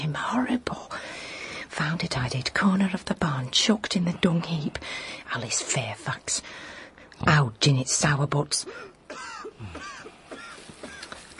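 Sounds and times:
speech: 0.1 - 1.0, 1.8 - 8.9, 9.6 - 10.0
young lad giving hacking coughs: 8.6 - 11.1.

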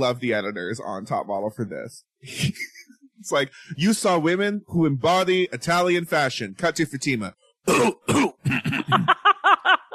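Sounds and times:
speech: 0.0 - 9.2
woman coughing: 7.7 - 9.1
laughter: 8.5 - 9.9.

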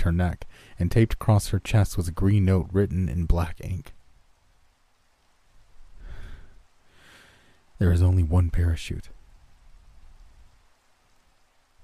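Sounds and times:
speech: 0.0 - 4.0, 7.8 - 9.2
steady rain falling: 0.0 - 11.8.

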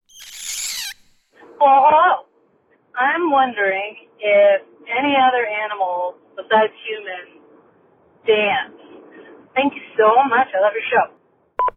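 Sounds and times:
bird squawking as voicemail prompt: 0.1 - 1.2
speech: 1.6 - 2.3, 3.0 - 7.4, 8.2 - 8.8, 9.6 - 11.2.

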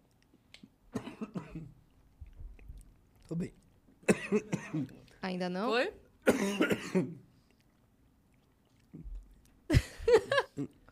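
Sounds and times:
person coughing after choking: 1.0 - 1.8, 4.0 - 5.0, 6.2 - 7.2
speech: 3.3 - 3.6, 4.3 - 7.2.

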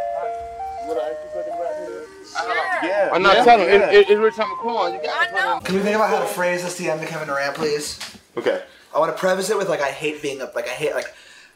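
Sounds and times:
tinny electronic ice cream truck jingle: 0.0 - 6.3
speech: 2.8 - 11.2.

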